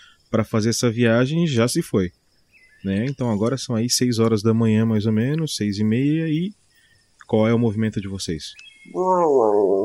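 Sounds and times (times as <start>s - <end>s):
speech: 0.3s - 2.2s, 2.8s - 6.6s, 7.3s - 9.8s
stomach growling: 9.0s - 9.8s.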